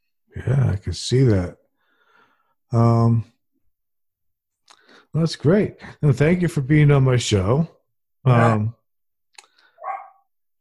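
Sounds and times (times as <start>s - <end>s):
speech: 0.4s - 1.6s, 2.7s - 3.3s, 5.1s - 8.8s
faint short yelp-like sound: 8.3s - 8.7s
dog barking: 8.4s - 8.7s, 9.8s - 10.3s.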